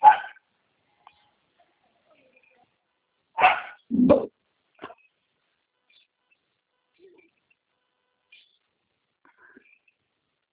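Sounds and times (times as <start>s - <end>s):
dog barking: 0.0s - 0.4s, 3.4s - 3.9s.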